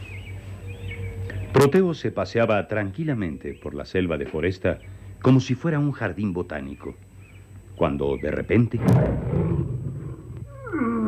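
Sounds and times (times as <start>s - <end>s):
speech: 1.5s - 7.1s, 7.8s - 9.4s
saber-toothed tiger roar: 8.7s - 11.0s
saber-toothed tiger growl sliding down in pitch: 8.8s - 11.0s.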